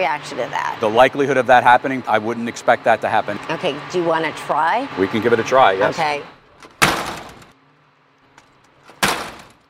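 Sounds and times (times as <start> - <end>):
speech: 0.0 - 6.4
door slammed shut: 6.6 - 7.5, 8.9 - 9.6.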